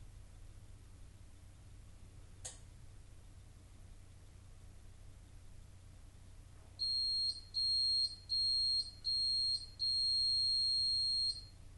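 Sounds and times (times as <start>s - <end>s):
faint low hum: 0.0s - 11.7s
long sustained diagnostic beep: 6.8s - 11.5s.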